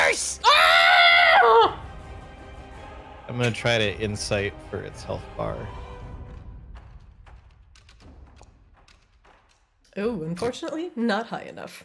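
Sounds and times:
burning creature screaming: 0:00.0 - 0:01.8
speech: 0:03.4 - 0:05.8, 0:10.0 - 0:11.8.

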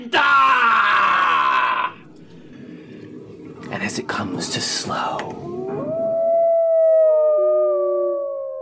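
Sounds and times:
werewolf howl across a valley: 0:00.2 - 0:02.0, 0:05.3 - 0:08.6
speech: 0:04.0 - 0:05.5.

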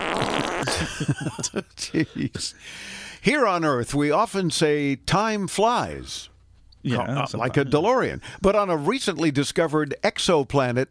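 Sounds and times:
buzzy raspy fart sound effect: 0:00.0 - 0:00.9
laughter: 0:00.6 - 0:02.6
speech: 0:00.6 - 0:10.8.

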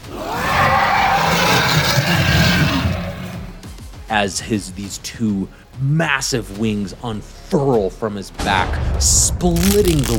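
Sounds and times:
dragon roar sound effect: 0:00.0 - 0:03.6
speech: 0:04.2 - 0:10.1.

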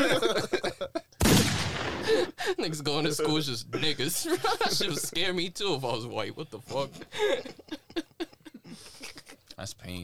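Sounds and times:
laughter: 0:00.0 - 0:01.2, 0:04.1 - 0:05.3, 0:06.7 - 0:09.4
gunshot outside: 0:01.2 - 0:02.2
speech: 0:02.6 - 0:07.7, 0:09.6 - 0:10.0.

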